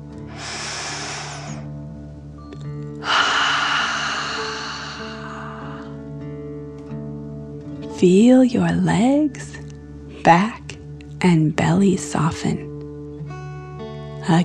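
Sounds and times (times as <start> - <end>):
slow deep breath in through the nose and forceful exhale: 0.2 - 1.8, 3.0 - 6.2
speech: 8.0 - 9.6, 10.3 - 10.6, 11.2 - 12.7, 14.3 - 14.4.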